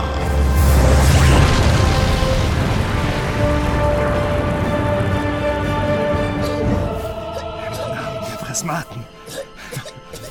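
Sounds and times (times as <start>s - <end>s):
loud booming explosion: 0.2s - 6.9s.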